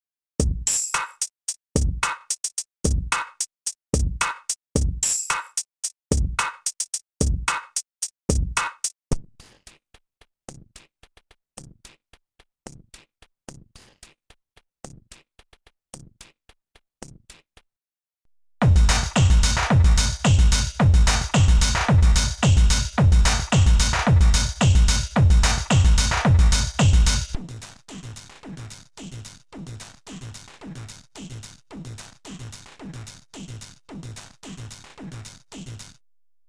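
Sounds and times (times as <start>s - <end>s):
drum loops through a ring modulator: 0.4s - 9.0s, 18.6s - 27.4s.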